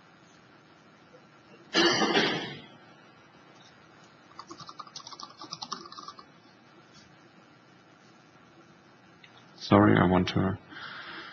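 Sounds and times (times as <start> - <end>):
typing on a computer keyboard: 4.3 - 6.3
speech: 9.7 - 10.6.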